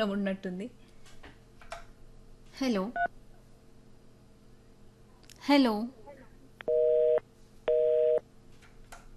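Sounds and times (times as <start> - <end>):
speech: 0.0 - 0.9, 2.6 - 3.2, 5.5 - 6.0
phone busy tone after a dropped call: 6.7 - 8.2.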